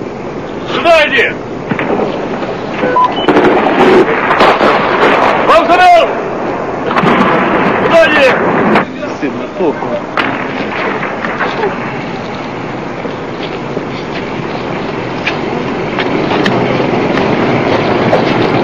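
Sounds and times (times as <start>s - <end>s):
constant roar: 0.0s - 18.6s
speech: 0.8s - 1.5s, 5.6s - 6.2s, 9.2s - 10.1s
gunshots during an assault on a television centre: 3.2s - 6.2s, 6.8s - 9.2s, 10.1s - 12.0s.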